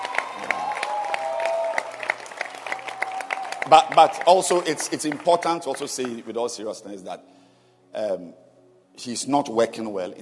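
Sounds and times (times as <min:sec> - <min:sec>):
church audience applause: 0:00.0 - 0:06.3
speech: 0:03.7 - 0:07.4, 0:08.0 - 0:08.4, 0:09.0 - 0:10.2.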